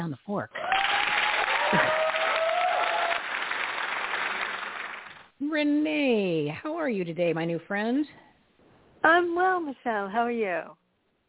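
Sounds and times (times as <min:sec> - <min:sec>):
speech: 0:00.0 - 0:00.8, 0:01.7 - 0:02.1, 0:05.5 - 0:08.2, 0:09.0 - 0:10.8
crowd applauding: 0:00.6 - 0:05.3
whistle or cheer from a crowd: 0:00.7 - 0:03.2.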